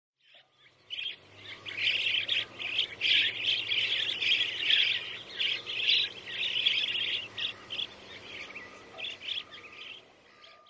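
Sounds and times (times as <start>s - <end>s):
bird song of bright chirps and trills: 0.2s - 10.6s.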